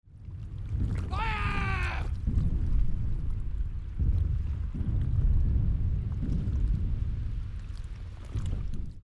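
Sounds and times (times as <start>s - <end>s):
sea battle: 0.1s - 9.0s.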